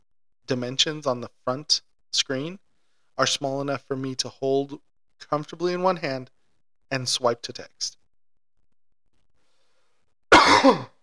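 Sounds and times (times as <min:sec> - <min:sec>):
speech: 0:00.5 - 0:02.6, 0:03.2 - 0:08.0, 0:10.6 - 0:10.9
harsh throaty cough: 0:10.3 - 0:11.0
raspy clearing of the throat: 0:10.3 - 0:11.0.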